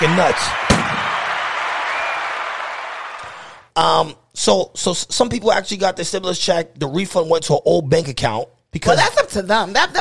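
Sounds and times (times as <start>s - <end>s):
speech: 0.0s - 0.6s, 3.8s - 9.9s
audience clapping: 0.0s - 3.7s.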